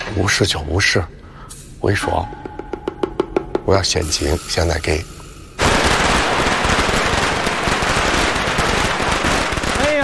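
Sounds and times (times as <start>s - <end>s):
speech: 0.2s - 1.2s, 1.8s - 2.5s, 3.7s - 5.2s
string of firecrackers set off for a birthday celebration: 5.5s - 10.0s.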